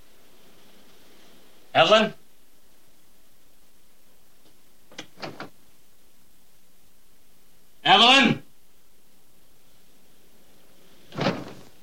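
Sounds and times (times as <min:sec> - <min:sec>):
speech: 0:01.8 - 0:02.2
door barged open with force: 0:05.0 - 0:05.5, 0:11.1 - 0:11.7.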